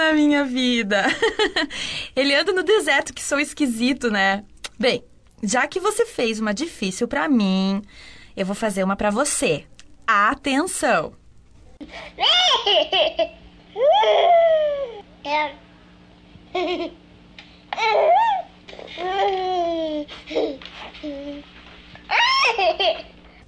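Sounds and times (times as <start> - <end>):
speech: 0.1 - 11.2, 11.8 - 15.6, 16.5 - 17.0, 17.7 - 21.5, 22.1 - 23.1
baby laughing: 12.2 - 15.4, 16.5 - 17.0, 17.8 - 20.7, 22.1 - 23.1.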